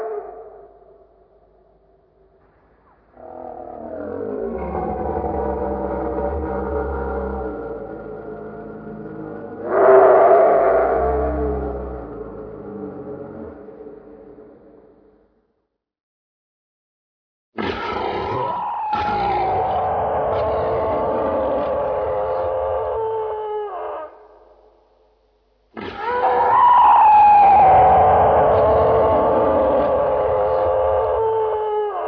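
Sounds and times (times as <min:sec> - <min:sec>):
dragon groaning: 0:03.2 - 0:13.7, 0:17.6 - 0:24.1, 0:25.9 - 0:31.7.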